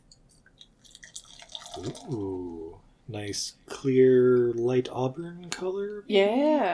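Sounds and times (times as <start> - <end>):
German-style lager pouring from a dark bottle into a glass: 0.5 - 2.8
speech: 1.8 - 6.7.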